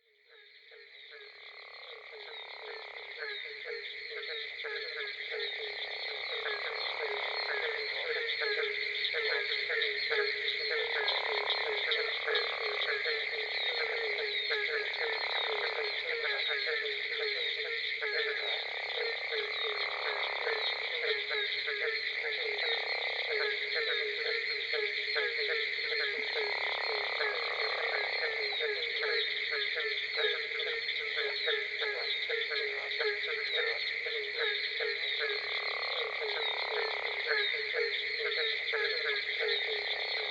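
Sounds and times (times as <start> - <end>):
Barking Treefrog calling: 0.0 - 40.2
Gopher Frog calling: 0.0 - 40.2.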